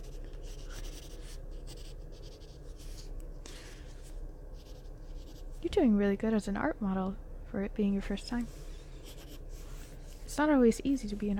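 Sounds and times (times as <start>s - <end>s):
pencil drawing on paper: 0.0s - 3.0s, 9.0s - 10.0s
speech: 5.6s - 8.6s, 10.4s - 11.3s.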